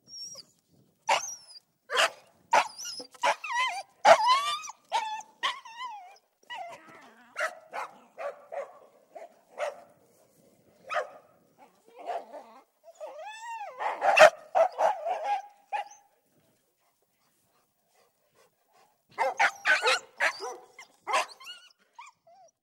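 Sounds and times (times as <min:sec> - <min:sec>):
domestic dog whining: 0:00.0 - 0:00.5, 0:01.1 - 0:01.6, 0:02.6 - 0:06.9, 0:19.3 - 0:22.6
labrador and two sheep dogs barking outdoors: 0:01.9 - 0:03.4, 0:04.0 - 0:04.4, 0:07.4 - 0:09.9, 0:10.9 - 0:11.2, 0:13.8 - 0:16.0, 0:19.2 - 0:21.4.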